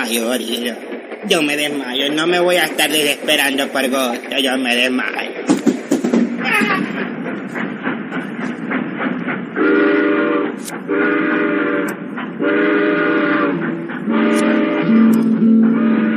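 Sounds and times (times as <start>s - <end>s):
train rumbling and chugging at a station in León: 0.0s - 16.1s
speech: 0.1s - 5.6s
long loud steady train whistle blasts: 9.6s - 16.1s.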